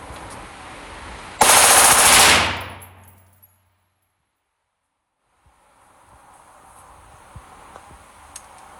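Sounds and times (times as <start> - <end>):
assault rifle firing a burst on full automatic: 1.4 - 3.0.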